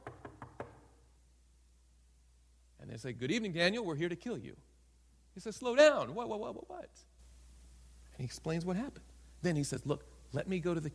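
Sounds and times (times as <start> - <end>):
sharp knocks on a door: 0.0 - 0.9
speech: 2.9 - 4.7, 5.4 - 7.1, 8.2 - 10.9.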